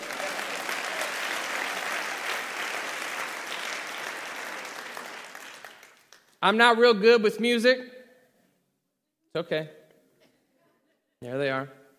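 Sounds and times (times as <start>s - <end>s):
room full of people clapping: 0.0s - 6.2s
speech: 6.4s - 7.9s, 9.3s - 9.8s, 11.2s - 11.8s.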